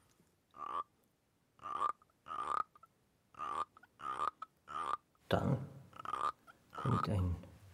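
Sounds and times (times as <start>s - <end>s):
frog-like croaks made by rubbing a small vodka shot glass: 0.5s - 1.0s, 1.6s - 5.2s, 5.9s - 7.4s
speech: 5.3s - 5.6s, 7.0s - 7.5s.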